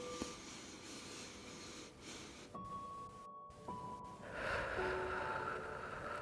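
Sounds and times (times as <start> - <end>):
deep breath in through the nose and out through the mouth: 0.0 - 2.6, 4.2 - 6.2.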